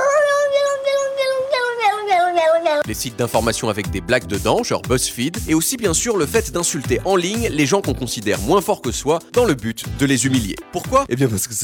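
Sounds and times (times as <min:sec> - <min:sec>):
cat meowing: 0:00.0 - 0:02.8
speech: 0:02.9 - 0:11.6.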